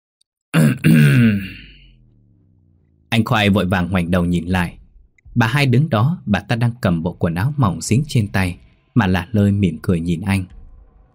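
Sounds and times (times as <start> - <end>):
woman clearing her throat: 0.6 - 1.8
speech: 0.8 - 1.6, 3.2 - 4.8, 5.4 - 10.6.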